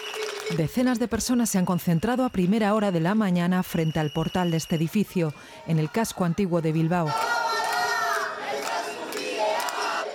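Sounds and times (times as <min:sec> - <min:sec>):
speech: 0:00.5 - 0:07.3
protesters chanting slogans in unison against an eviction: 0:05.1 - 0:10.1.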